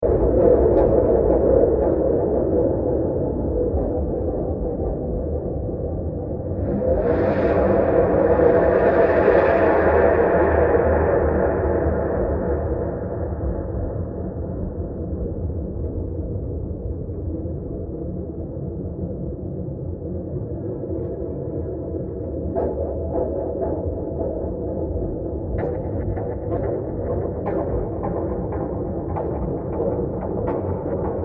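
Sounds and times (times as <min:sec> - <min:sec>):
scary ambience: 0:00.0 - 0:31.2.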